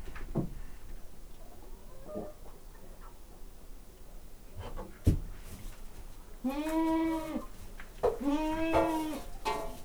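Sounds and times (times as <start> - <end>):
domestic goat bleating in a farmyard stable: 6.4 - 7.5, 8.1 - 9.3.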